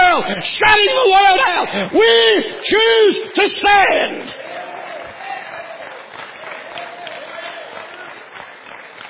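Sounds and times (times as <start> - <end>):
speech: 0.2 - 4.4
large audience clapping in a church: 4.3 - 9.0.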